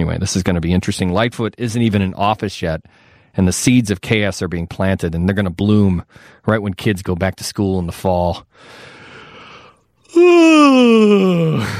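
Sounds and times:
speech: 0.0s - 8.9s, 10.1s - 11.7s
exaggerated yawn: 10.1s - 11.7s.

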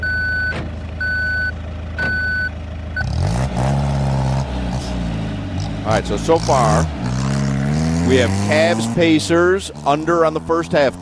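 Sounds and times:
armored truck reversing beeps: 0.0s - 3.2s
armored truck engine rumbling and revving: 0.0s - 11.0s
speech: 5.9s - 7.0s, 8.1s - 11.0s.

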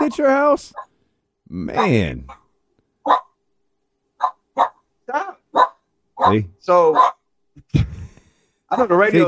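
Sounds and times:
speech: 0.0s - 0.9s, 1.5s - 2.4s, 3.1s - 3.3s, 6.2s - 8.0s, 8.7s - 9.2s
upset dog barking: 3.0s - 3.4s, 4.2s - 4.8s, 5.5s - 7.2s.

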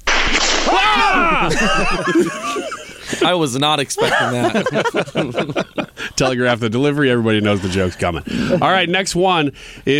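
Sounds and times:
whip crack sound effect: 0.0s - 1.3s
laughter: 0.7s - 9.1s
speech: 1.5s - 9.9s.

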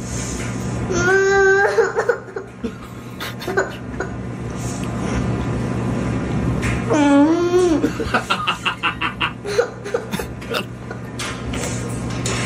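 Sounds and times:
low hum: 0.0s - 12.4s
young child crying: 0.9s - 2.3s.

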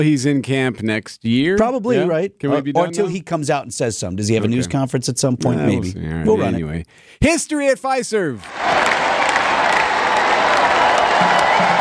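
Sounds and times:
speech: 0.0s - 9.0s
crowd of more than 17,000 applauding and cheering at an indoor women's volleyball match: 8.4s - 11.8s.

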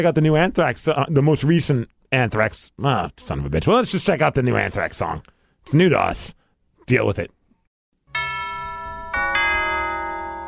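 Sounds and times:
speech: 0.0s - 7.4s
deep tolling bell in a song intro: 8.1s - 10.4s.

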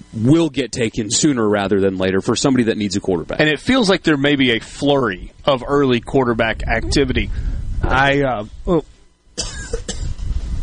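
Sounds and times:
speech: 0.1s - 9.5s
person clearing throat as pollen catches in the throat: 9.4s - 10.2s
person coughing as pollen catches in the throat: 9.4s - 10.2s.

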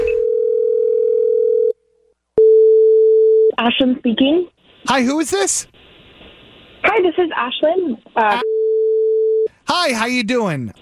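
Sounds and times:
telephone ringback tone on an outgoing call: 0.1s - 1.7s, 2.4s - 3.5s, 8.4s - 9.5s
speech: 3.6s - 5.8s, 6.8s - 8.5s, 9.7s - 10.8s.

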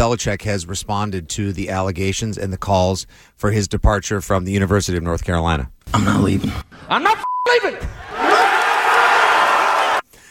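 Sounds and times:
speech: 0.0s - 8.6s
crowd cheering: 7.8s - 10.1s
whoops: 8.0s - 10.0s.

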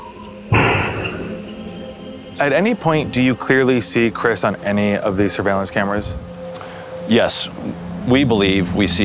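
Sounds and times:
single gunshot at a kennel with lingering echo: 0.5s - 1.4s
speech: 2.4s - 6.4s, 7.1s - 9.0s.

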